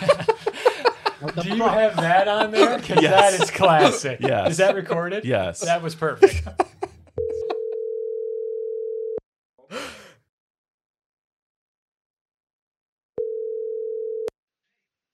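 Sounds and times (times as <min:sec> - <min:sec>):
laughter: 0:00.0 - 0:07.8
speech: 0:01.2 - 0:06.7
telephone tone of an incoming call: 0:07.2 - 0:09.2, 0:13.2 - 0:14.3
breathy noise: 0:09.7 - 0:10.2.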